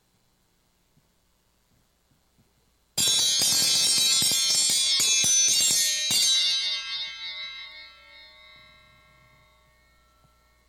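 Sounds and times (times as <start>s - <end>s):
handheld dinner bell shaken rapidly: 3.0s - 10.6s.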